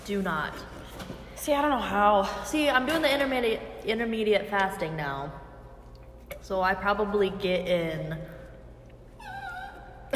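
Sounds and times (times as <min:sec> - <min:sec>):
low hum: 0:00.0 - 0:10.1
speech: 0:00.1 - 0:00.8, 0:01.4 - 0:05.4, 0:06.4 - 0:08.3
small dog whimpering: 0:09.2 - 0:10.1.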